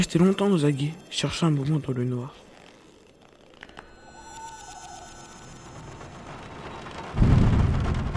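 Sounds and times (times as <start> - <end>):
speech: 0.0 - 2.5
rain falling: 5.8 - 8.1
low rumble of thunder: 6.3 - 8.1
loud deep thunderclap: 6.5 - 8.1.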